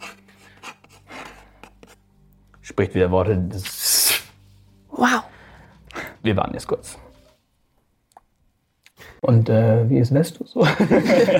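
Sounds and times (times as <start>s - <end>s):
pen scratching on a small slip of paper: 0.0s - 2.0s
speech: 2.8s - 3.8s, 5.0s - 5.3s, 6.2s - 7.0s, 9.3s - 11.3s
laughter: 10.6s - 11.3s.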